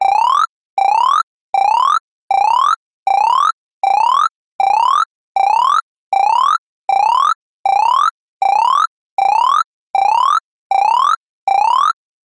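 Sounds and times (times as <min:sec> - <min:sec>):
science fiction console computer alarm ringing: 0:00.0 - 0:12.0.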